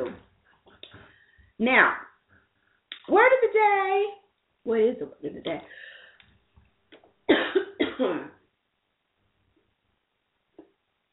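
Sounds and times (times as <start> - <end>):
speech: 1.6 - 2.1, 3.1 - 5.9, 8.0 - 8.4
person coughing harshly: 7.3 - 8.4.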